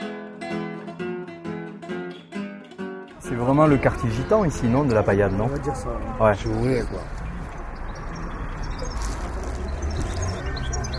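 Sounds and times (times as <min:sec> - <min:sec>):
outdoor street noise: 0:00.0 - 0:10.9
caged birds chirping and singing: 0:03.2 - 0:10.9
speech: 0:03.3 - 0:07.2.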